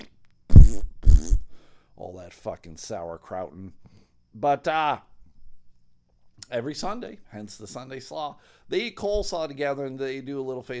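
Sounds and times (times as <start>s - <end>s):
loud buzzy fart sound effects: 0.0s - 1.5s
speech: 2.2s - 5.1s, 6.5s - 10.7s.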